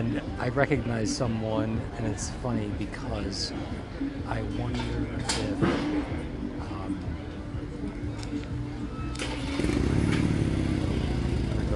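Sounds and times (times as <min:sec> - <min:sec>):
speech: 0:00.0 - 0:06.2
faint chatter: 0:00.0 - 0:11.7
motorcycle engine idling and revving: 0:09.2 - 0:11.7.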